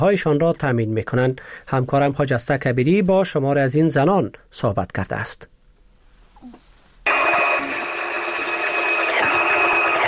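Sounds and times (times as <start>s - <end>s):
speech: 0.0s - 5.5s
sewing machine stitching clothes: 7.1s - 10.0s.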